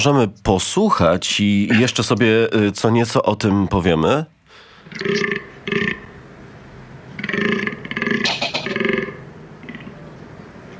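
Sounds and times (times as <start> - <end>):
speech: 0.0 - 5.4
deep belching groans of an animal's rutting call: 4.8 - 6.4, 7.0 - 10.7.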